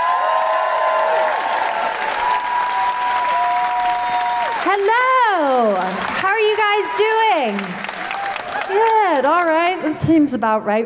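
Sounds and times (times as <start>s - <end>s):
live comedy show audience applause: 0.0s - 9.8s
speech: 4.7s - 7.8s, 8.7s - 10.8s.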